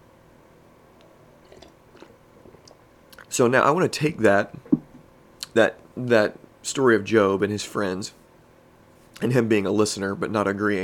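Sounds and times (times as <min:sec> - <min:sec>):
sipping coffee from a mug: 0:01.4 - 0:03.3
speech: 0:03.4 - 0:04.6, 0:05.6 - 0:08.2, 0:09.2 - 0:10.8.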